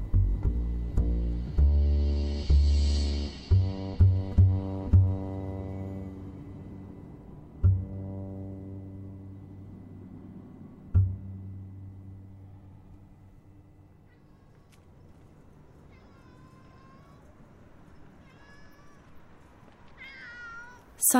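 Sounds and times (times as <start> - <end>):
low rumble: 0.0 - 21.1
alley cat meowing: 14.0 - 21.0.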